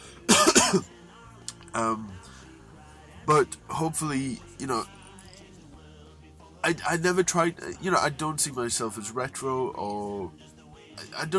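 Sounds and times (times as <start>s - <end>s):
person coughing: 0.3s - 0.9s
raspy throat clearing: 0.3s - 0.9s
speech: 0.7s - 1.0s, 1.8s - 2.2s, 3.3s - 5.0s, 6.6s - 11.3s.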